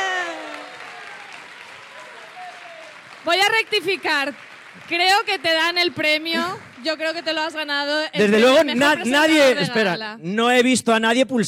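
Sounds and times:
loud sustained whoop from one voice: 0.0s - 3.0s
audience applause: 0.0s - 9.7s
crowd cheering: 0.0s - 10.0s
speech: 3.2s - 11.4s.

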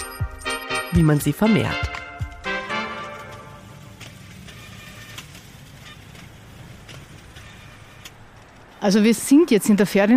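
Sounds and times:
street traffic hum on a small short street: 0.0s - 10.1s
speech: 1.0s - 1.9s, 8.8s - 10.1s
people walking past: 1.0s - 10.1s
faint clicks: 3.2s - 8.8s.

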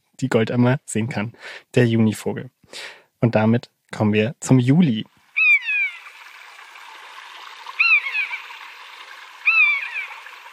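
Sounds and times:
speech: 0.2s - 5.1s
flowing water: 4.7s - 10.5s
common buzzard giving plaintive mewing descending calls: 5.4s - 6.2s, 7.7s - 10.5s.

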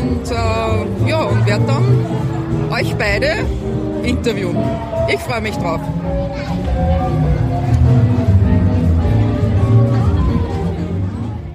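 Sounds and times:
children chattering in a street festival crowd: 0.0s - 11.5s
dense outdoor crowd murmuring at a museum stand at a street festival: 0.0s - 11.5s
speech: 0.2s - 7.4s.

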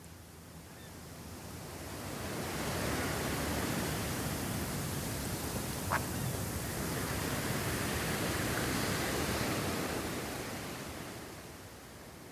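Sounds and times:
ocean surf washing over a beach: 1.2s - 12.3s.

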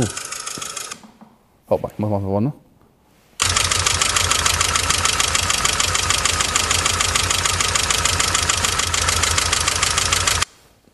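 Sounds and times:
speech: 0.0s - 0.7s, 1.7s - 2.7s
old M43 petrol car engine idling: 3.4s - 10.4s
petrol engine valve train ticking: 3.4s - 10.5s.

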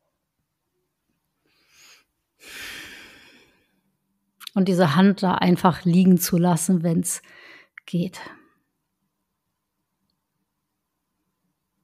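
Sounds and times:
slow deep breath during a relaxation exercise: 1.4s - 3.9s, 7.2s - 7.8s
speech: 4.6s - 8.4s.

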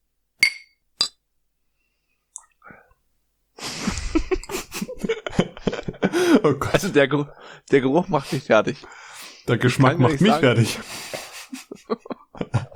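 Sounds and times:
glasses clinking in a toast with beer: 0.4s - 1.2s
laughter: 3.6s - 12.7s
speech: 6.4s - 11.1s.

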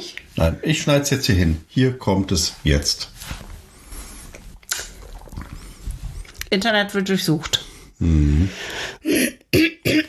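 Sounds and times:
speech: 0.4s - 3.2s, 6.5s - 9.6s
man clearing throat mid-conversation: 9.0s - 10.0s.

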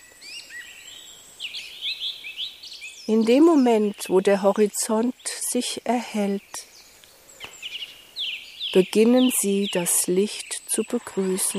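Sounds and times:
birds chirping and warbling in the morning: 0.0s - 11.5s
speech: 3.1s - 6.7s, 8.7s - 11.5s.

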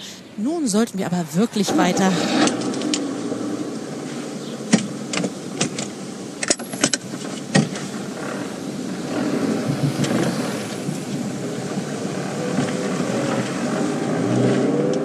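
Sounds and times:
speech: 0.4s - 2.5s
car engine and road noise on a bicycle street in Hamburg: 1.4s - 15.0s.

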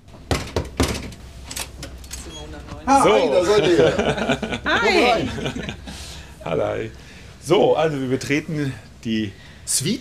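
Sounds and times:
knocking on a hotel suite door: 0.2s - 1.1s
speech: 2.6s - 9.9s
laughter: 3.1s - 6.2s.

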